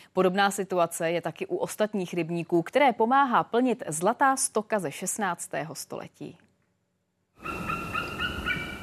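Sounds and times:
speech: 0.1s - 6.4s
white-tailed eagles whistling calls at Rožmberk fishpond in the Czech Republic: 7.4s - 8.8s.

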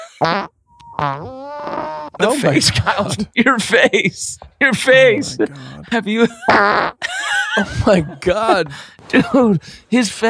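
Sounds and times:
loud buzzing fart noises: 0.1s - 2.2s, 6.5s - 7.0s
speech: 0.2s - 10.2s
laughter: 2.2s - 9.9s.

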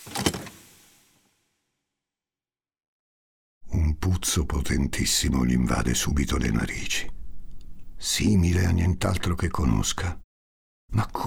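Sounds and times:
door being opened: 0.0s - 0.8s
speech: 4.0s - 7.2s, 8.0s - 10.2s, 10.9s - 11.2s.

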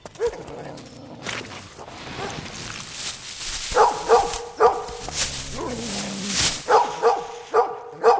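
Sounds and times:
rustling from dog digging: 1.8s - 7.8s
dog whiny yips: 3.7s - 5.0s, 6.7s - 8.1s
dog barking while digging in a copse of trees: 3.7s - 5.8s, 6.6s - 8.1s.

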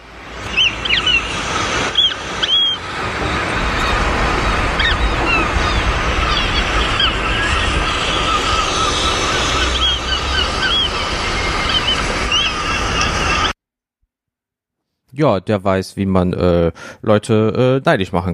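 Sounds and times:
ocean surf rushing: 0.0s - 13.6s
gulls squawking: 0.5s - 13.6s
speech: 15.2s - 18.3s.

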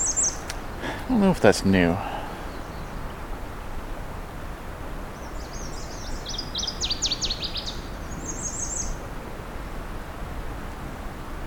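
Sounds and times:
northern waterthrush singing sharp high rapid chipping notes: 0.0s - 0.9s, 5.2s - 9.0s
creek flowing into a bay: 0.0s - 11.4s
speech: 1.1s - 2.1s.

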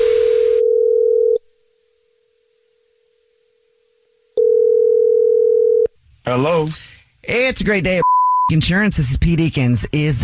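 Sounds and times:
telephone ringing tone heard down the line: 0.0s - 1.4s, 4.4s - 5.9s
speech: 6.3s - 10.2s.

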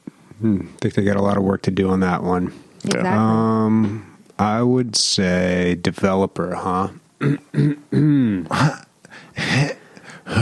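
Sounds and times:
speech: 0.4s - 8.8s
person coughing: 7.2s - 8.8s
person clearing throat: 7.2s - 8.9s.

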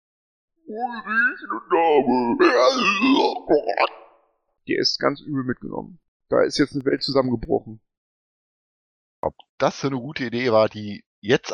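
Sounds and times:
speech: 0.7s - 4.0s, 4.7s - 7.9s, 9.2s - 11.5s
voice imitating a Bullywug creature whimpering and moaning: 0.7s - 4.0s.

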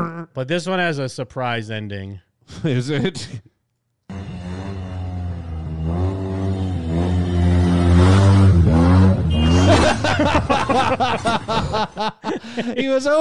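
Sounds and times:
speech: 0.0s - 3.5s, 10.1s - 13.1s
long steady car horn blaring: 4.1s - 10.1s
snickering laughter: 9.4s - 12.8s.

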